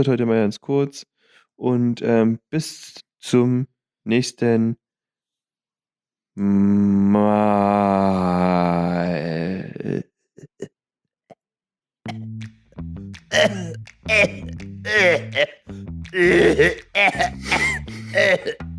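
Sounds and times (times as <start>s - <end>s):
speech: 0.0s - 4.8s, 6.4s - 10.0s, 13.4s - 18.7s
harsh repeated coughing fit: 13.3s - 15.6s, 16.2s - 18.6s
strained voiced gasps and choking sounds: 13.3s - 18.6s.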